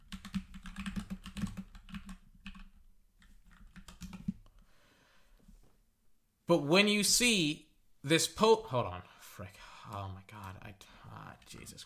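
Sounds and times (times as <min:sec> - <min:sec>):
fast typing on a computer keyboard: 0:00.0 - 0:04.6
speech: 0:06.5 - 0:11.8.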